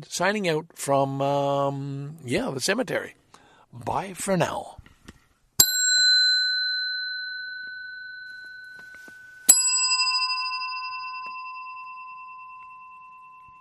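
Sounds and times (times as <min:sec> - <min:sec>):
speech: 0:00.0 - 0:04.8
big bell struck and ringing: 0:05.6 - 0:13.5.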